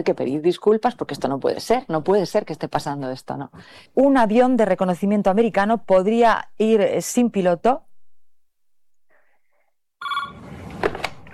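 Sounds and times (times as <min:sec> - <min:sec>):
speech: 0:00.0 - 0:07.9
telephone ringing with bright electronic tone: 0:10.0 - 0:10.6.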